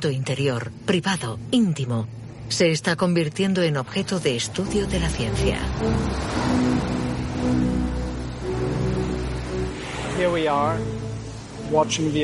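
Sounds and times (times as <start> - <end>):
speech: 0.0 - 6.7, 7.4 - 7.7, 10.2 - 10.9, 11.7 - 12.2
ocean surf washing on shore: 4.9 - 10.6.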